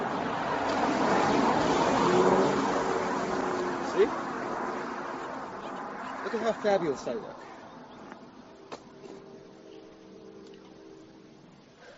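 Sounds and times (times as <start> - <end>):
car passing by outdoors: 0.0 - 8.4
speech: 6.4 - 7.5.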